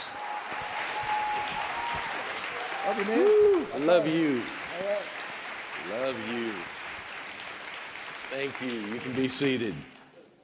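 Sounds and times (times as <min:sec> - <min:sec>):
church congregation applause: 0:00.0 - 0:10.1
speech: 0:02.9 - 0:05.1, 0:05.9 - 0:06.8, 0:08.3 - 0:09.9.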